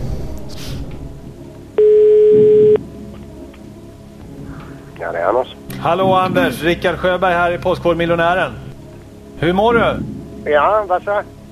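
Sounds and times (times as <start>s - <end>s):
ringback tone of an outgoing phone call: 1.8s - 2.8s
speech: 5.0s - 8.6s, 9.4s - 11.4s.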